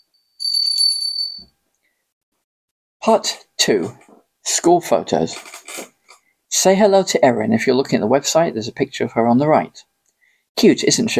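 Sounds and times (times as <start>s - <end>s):
small hand bell ringing: 0.0s - 1.5s
speech: 3.0s - 5.6s, 6.6s - 9.9s, 10.6s - 11.1s.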